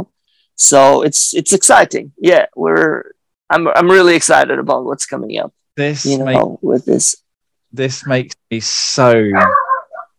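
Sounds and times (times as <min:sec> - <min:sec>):
speech: 0:00.0 - 0:09.6
dog giving a short sharp bark trailing into a whine: 0:09.3 - 0:10.1.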